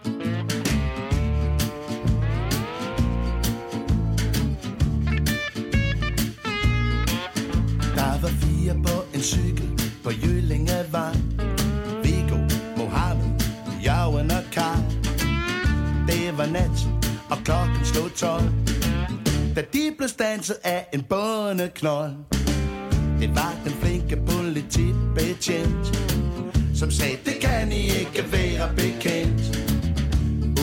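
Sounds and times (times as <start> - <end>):
full band with steady drums and bass: 0.2 - 8.1, 11.2 - 19.5, 22.4 - 30.6
man singing lead: 7.8 - 18.8, 19.6 - 22.3, 23.0 - 29.7
speech: 9.2 - 9.5, 19.6 - 22.5, 23.2 - 26.2, 26.8 - 29.8.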